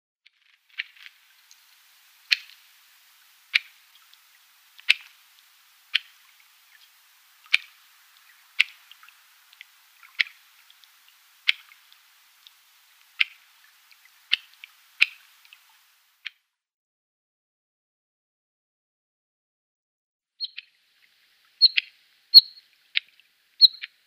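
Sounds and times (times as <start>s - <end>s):
Bluethroat calls: 2.2s - 2.6s, 4.8s - 5.2s, 5.9s - 15.8s, 20.4s - 20.8s, 21.6s - 24.0s.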